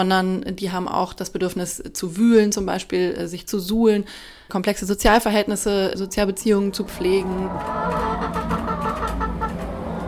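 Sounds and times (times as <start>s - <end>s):
speech: 0.0s - 8.9s
constant low rumble: 5.0s - 10.0s
flock of chickens clucking: 5.6s - 10.0s.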